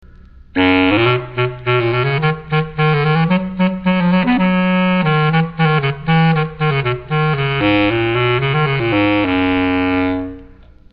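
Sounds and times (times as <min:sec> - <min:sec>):
bass clarinet: 0:00.6 - 0:10.8.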